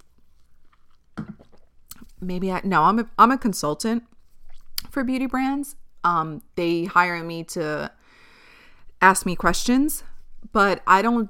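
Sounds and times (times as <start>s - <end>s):
person sipping a drink: 0.0s - 2.1s
speech: 2.2s - 4.1s, 5.0s - 8.0s, 9.0s - 11.2s.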